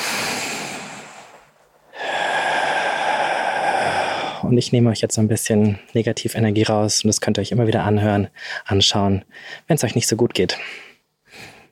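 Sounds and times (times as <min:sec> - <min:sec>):
broad airy exhale through the mouth: 0:00.0 - 0:04.4
long loud breath drawn in through the nose: 0:00.0 - 0:04.4
speech: 0:04.5 - 0:11.5.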